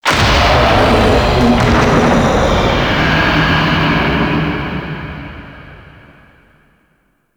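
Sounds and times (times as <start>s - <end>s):
infested hive destruction rumble in gameplay: 0.0s - 6.6s.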